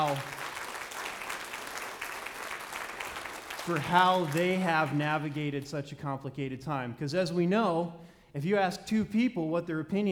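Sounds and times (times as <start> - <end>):
audience applause: 0.0 - 5.4
speech: 3.6 - 10.1.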